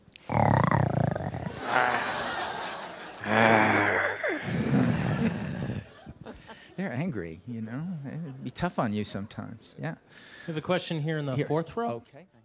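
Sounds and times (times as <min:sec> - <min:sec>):
people imitating an animal growl with their voices: 0:00.3 - 0:06.2
people chuckling: 0:01.4 - 0:06.9
speech: 0:06.8 - 0:12.4.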